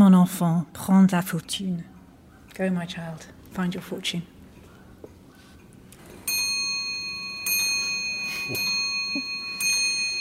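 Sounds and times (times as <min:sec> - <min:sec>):
speech: 0:00.2 - 0:01.9, 0:02.6 - 0:04.3, 0:08.5 - 0:09.3
old still-working clocks from the Foundling Hospital chiming: 0:06.1 - 0:10.2.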